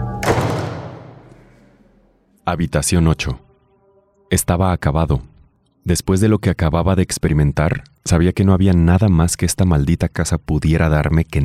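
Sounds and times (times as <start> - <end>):
door slamming shut with a heavy thud: 0.1 - 1.7
speech: 2.5 - 3.5, 4.3 - 11.4.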